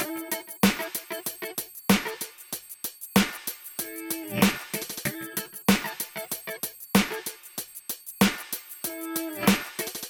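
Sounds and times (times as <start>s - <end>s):
guitar: 0.0s - 2.4s, 3.7s - 7.5s, 8.8s - 10.0s
drums: 0.0s - 10.0s.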